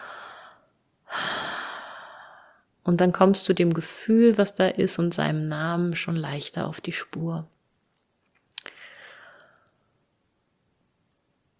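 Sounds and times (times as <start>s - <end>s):
deep breaths: 0.0s - 2.7s, 8.6s - 10.0s
speech: 2.8s - 7.5s.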